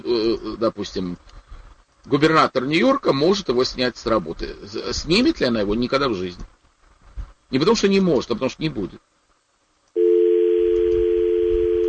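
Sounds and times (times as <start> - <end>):
speech: 0.1 - 1.4, 2.0 - 6.6, 7.5 - 9.1
telephone dial tone on the line: 10.0 - 11.8.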